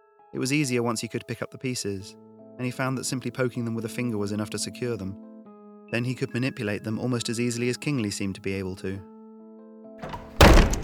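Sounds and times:
speech: 0.3 - 5.3, 5.9 - 9.1, 10.0 - 10.2
door banging open: 10.0 - 10.8
rattling: 10.0 - 10.8.

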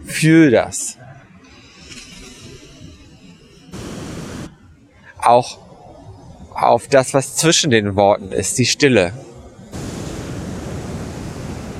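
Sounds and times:
speech: 0.1 - 1.0, 5.2 - 5.6, 6.6 - 9.3
ocean waves rushing: 3.7 - 4.5, 9.6 - 11.7.

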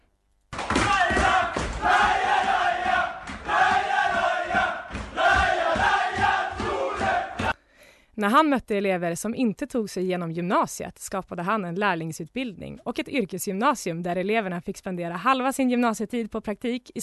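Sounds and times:
large crowd roaring and chanting: 0.6 - 7.6
rhythmic thumps: 0.6 - 7.6
speech: 8.2 - 17.0.

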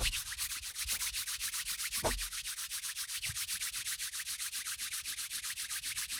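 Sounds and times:
hands rubbing together: 0.0 - 6.1.

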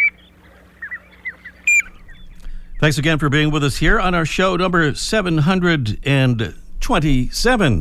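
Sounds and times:
piping plover whistled peeps: 0.0 - 3.0
faint low hum: 0.0 - 7.7
speech: 2.8 - 7.7.

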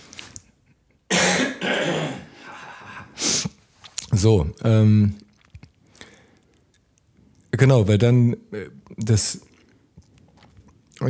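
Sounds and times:
person clearing throat: 1.1 - 2.7
person coughing: 1.1 - 3.2
speech: 4.2 - 5.2, 7.6 - 9.5.

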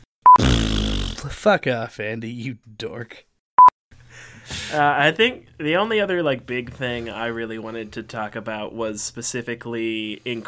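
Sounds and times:
sputtering fart sound effect: 0.3 - 1.4
speech: 1.4 - 3.3, 4.2 - 10.4.

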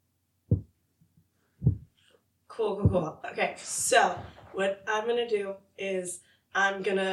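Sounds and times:
soft low thumps: 0.5 - 0.8, 1.6 - 2.0, 2.7 - 3.2
speech: 2.6 - 7.1.

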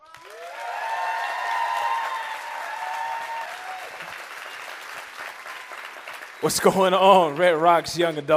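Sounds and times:
whoops from the audience: 0.0 - 4.6
large audience clapping and cheering for a speaker: 0.0 - 7.9
speech: 6.4 - 8.3.

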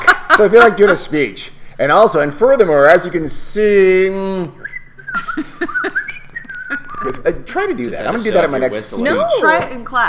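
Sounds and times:
speech: 0.4 - 5.8, 7.0 - 10.0
person whistling a short wavering tune: 4.6 - 7.3.

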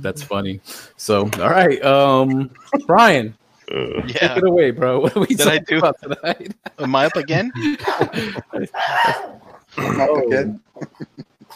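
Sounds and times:
speech: 0.0 - 11.3
laughter: 4.0 - 11.5
dog yelping and barking: 8.8 - 9.6.

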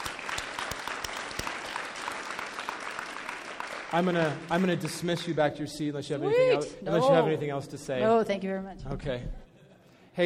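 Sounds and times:
church audience clapping: 0.0 - 5.6
speech: 3.9 - 9.4.

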